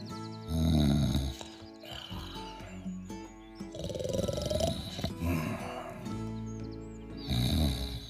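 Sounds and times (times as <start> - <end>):
loud rumbling rasping snores: 0.5 - 2.6, 3.7 - 6.2, 7.2 - 8.0.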